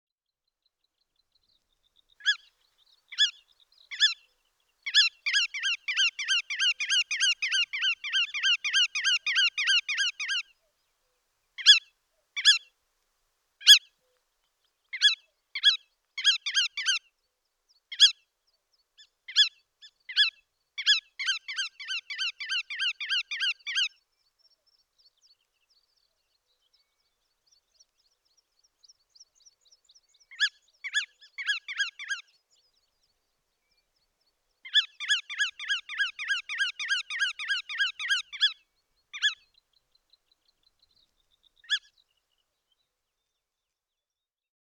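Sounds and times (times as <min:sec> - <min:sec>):
bar-tailed godwit calling: 0:02.2 - 0:02.5, 0:03.1 - 0:04.3, 0:04.9 - 0:10.5, 0:11.6 - 0:12.7, 0:13.6 - 0:13.9, 0:15.0 - 0:17.0, 0:19.3 - 0:24.0, 0:30.3 - 0:32.4, 0:34.6 - 0:39.5.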